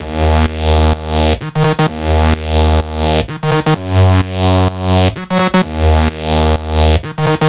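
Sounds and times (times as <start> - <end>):
electro bass loop: 0.0 - 7.4.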